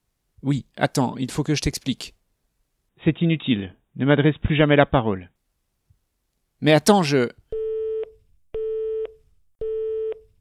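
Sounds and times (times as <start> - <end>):
speech: 0.4 - 2.2, 3.0 - 5.3, 6.6 - 7.4
telephone busy tone in a handset: 7.5 - 10.3.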